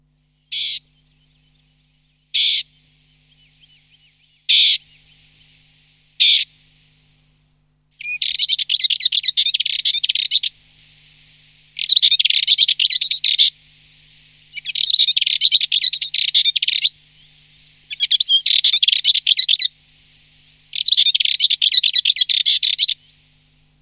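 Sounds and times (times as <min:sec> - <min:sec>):
Dartford warbler call notes: 0:00.4 - 0:06.6, 0:08.0 - 0:10.6, 0:11.8 - 0:13.6, 0:14.5 - 0:19.8, 0:20.7 - 0:23.5.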